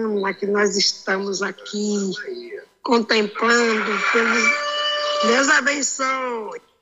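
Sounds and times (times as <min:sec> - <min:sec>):
speech: 0:00.0 - 0:06.7
rooster crowing: 0:03.4 - 0:05.7.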